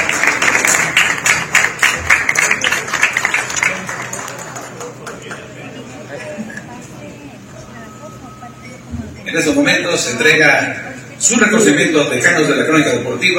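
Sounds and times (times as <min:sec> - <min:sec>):
audience applause: 0:00.0 - 0:05.8
faint crowd murmur: 0:00.0 - 0:13.3
speech: 0:09.4 - 0:13.3.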